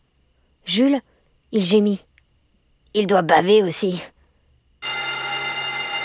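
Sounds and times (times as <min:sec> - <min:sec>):
speech: 0:00.7 - 0:02.1, 0:02.9 - 0:04.1
electric bell ringing for lights out: 0:04.8 - 0:06.0.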